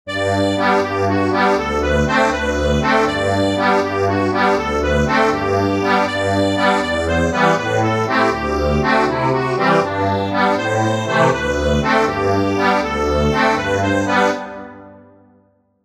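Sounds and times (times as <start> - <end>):
accordion: 0.0 - 15.2.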